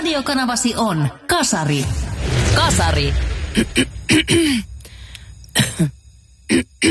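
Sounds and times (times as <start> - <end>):
speech: 0.2 - 4.7, 5.8 - 6.8
dry hacking cough: 3.6 - 4.7, 5.5 - 6.8.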